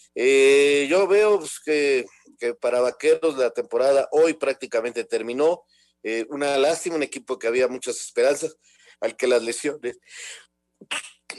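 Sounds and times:
speech: 0.1s - 11.3s
person sneezing: 10.8s - 11.3s.

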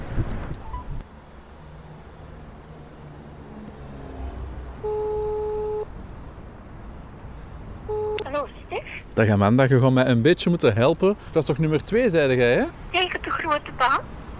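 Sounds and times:
outdoor traffic noise: 0.0s - 14.3s
outdoor wind: 0.0s - 14.3s
telephone call buzzing ring tone on the line: 4.8s - 5.9s, 7.9s - 8.4s
speech: 8.4s - 14.2s.

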